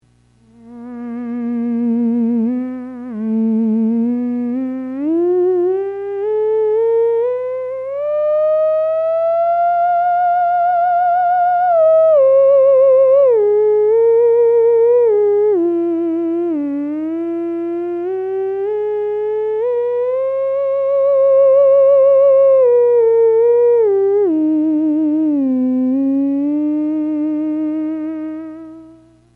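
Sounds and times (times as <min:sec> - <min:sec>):
theremin played with timbre control: 0:00.4 - 0:29.3.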